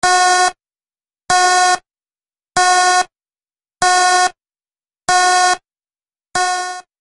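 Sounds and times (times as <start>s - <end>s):
electronic alarm: 0.0s - 0.6s, 2.6s - 3.1s, 3.8s - 4.4s, 5.1s - 5.6s, 6.3s - 6.9s.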